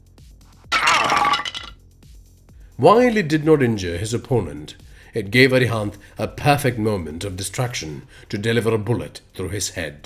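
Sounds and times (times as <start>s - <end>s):
light fixture crashing down and breaking: 0.7s - 1.7s
speech: 2.8s - 10.0s.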